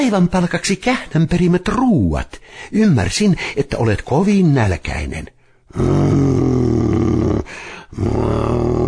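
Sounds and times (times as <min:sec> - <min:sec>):
speech: 0:00.0 - 0:07.2, 0:08.0 - 0:08.8
bear growling: 0:05.7 - 0:08.8.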